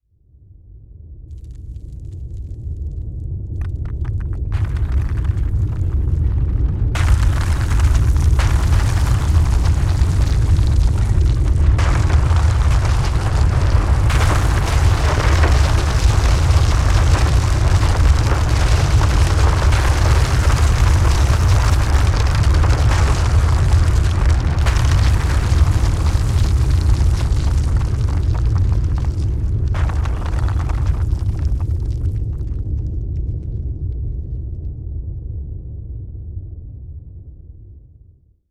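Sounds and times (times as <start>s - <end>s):
earthquake rumble: 1.2s - 37.2s
debris falling: 3.6s - 32.6s.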